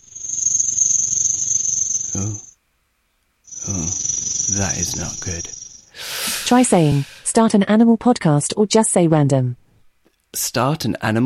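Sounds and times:
snake rattle buzzing: 0.0s - 2.5s, 3.5s - 7.3s
speech: 3.7s - 5.5s, 6.5s - 9.6s, 10.3s - 11.2s.

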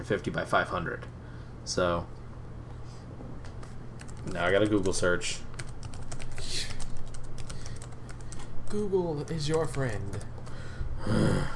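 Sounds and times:
low hum: 0.0s - 11.5s
speech: 0.1s - 2.2s, 4.2s - 5.5s, 8.7s - 10.3s, 11.0s - 11.5s
typing on a computer keyboard: 4.0s - 10.6s.

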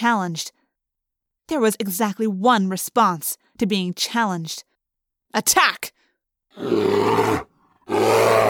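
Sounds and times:
speech: 0.0s - 0.6s, 1.5s - 4.7s, 5.3s - 6.0s, 6.6s - 8.4s
grizzly bear roaring: 6.6s - 8.4s.

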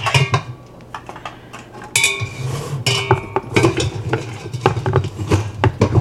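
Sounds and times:
metal lid fitted onto a Whirly Pop stovetop popcorn popper: 0.0s - 5.9s.

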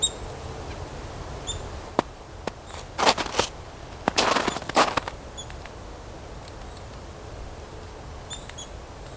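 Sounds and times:
chickadee pecking at a plant gall: 0.6s - 5.8s.

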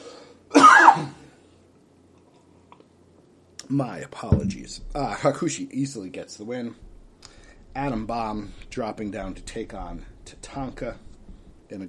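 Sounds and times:
person clearing throat: 0.6s - 1.2s
speech: 3.7s - 6.9s, 7.8s - 11.1s.

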